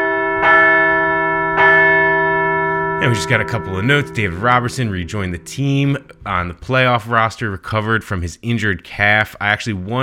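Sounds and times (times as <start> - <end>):
large bell ringing: 0.0 - 7.2
speech: 3.0 - 10.0.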